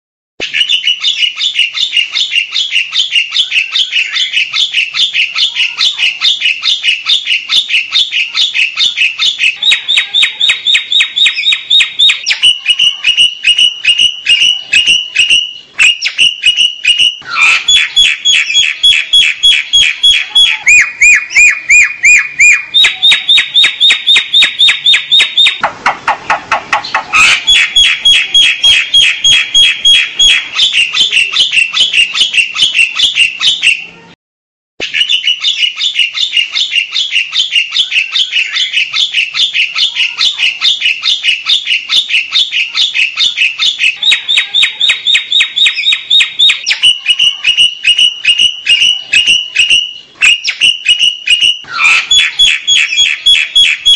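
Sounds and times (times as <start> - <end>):
jalak hongkong myna bird: 0.4 - 34.2, 34.8 - 53.9.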